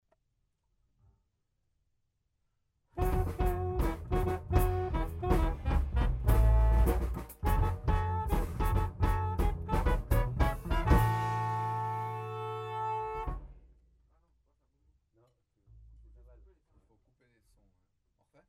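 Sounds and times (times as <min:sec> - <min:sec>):
riff in unison: 0:03.0 - 0:13.6.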